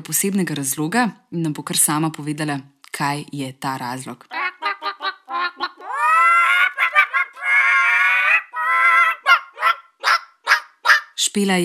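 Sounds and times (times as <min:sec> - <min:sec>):
speech: 0:00.0 - 0:04.4, 0:11.4 - 0:11.6
hen clucking after laying her first egg: 0:04.3 - 0:11.2.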